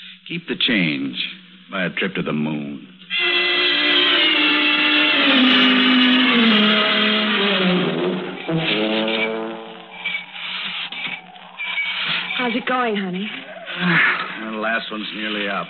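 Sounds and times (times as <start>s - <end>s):
speech: 0.3s - 2.9s, 5.3s - 6.0s, 12.6s - 15.6s
car horn honking: 3.1s - 12.9s.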